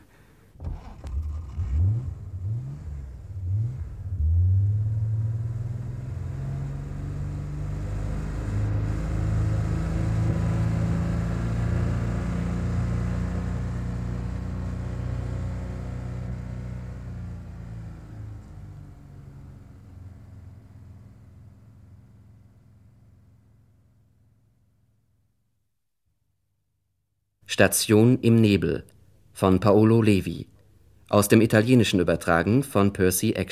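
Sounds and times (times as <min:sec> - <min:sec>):
car driving off, engine revving: 0:00.6 - 0:22.8
speech: 0:27.5 - 0:30.5, 0:31.1 - 0:33.4.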